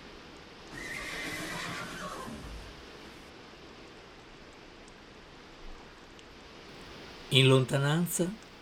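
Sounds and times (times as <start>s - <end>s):
horse whinnying: 0.7s - 2.7s
speech: 7.3s - 8.4s.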